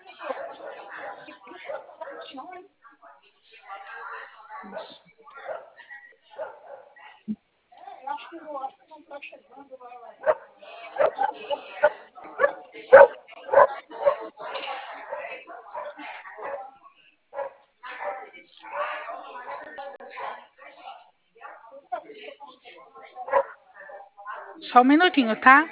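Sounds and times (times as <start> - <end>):
dog barking heard through a telephone-like sound: 0.2 - 2.4, 3.7 - 7.0, 10.2 - 20.8, 23.2 - 24.6
speech: 24.8 - 25.7.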